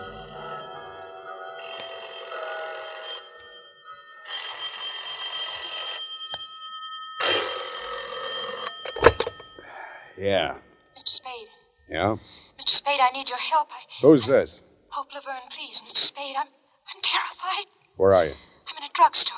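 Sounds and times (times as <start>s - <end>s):
old-style telephone bell ringing: 0.0s - 9.7s
telephone receiver being lifted: 8.8s - 9.5s
speech: 10.2s - 10.7s, 11.9s - 19.3s.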